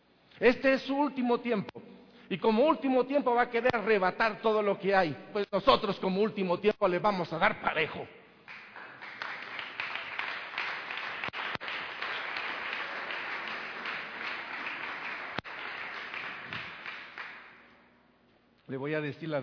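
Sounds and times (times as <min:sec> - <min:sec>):
speech: 0:00.4 - 0:08.2, 0:18.7 - 0:19.4
audience applause: 0:08.5 - 0:17.6.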